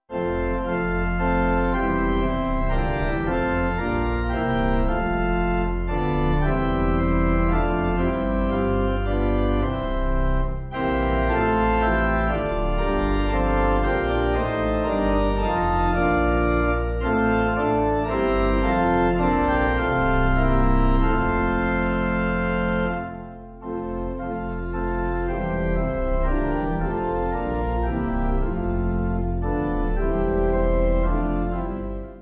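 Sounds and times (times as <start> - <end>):
pipe organ backing music: 0.0 - 32.1.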